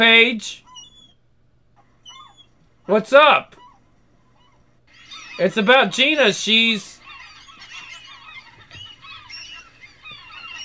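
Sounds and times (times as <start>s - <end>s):
speech: 0.0s - 0.6s, 2.9s - 3.6s, 5.4s - 6.9s
dense chorus of seagulls squawking and crying: 4.9s - 10.6s.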